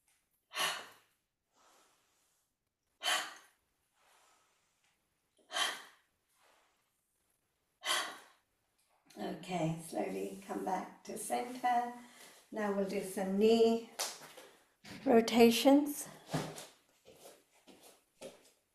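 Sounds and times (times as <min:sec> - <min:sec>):
person breathing slowly during a guided stretching session: 0:00.5 - 0:02.4, 0:03.0 - 0:04.8, 0:05.4 - 0:06.7, 0:07.8 - 0:08.4
speech: 0:09.2 - 0:14.0, 0:15.0 - 0:16.4.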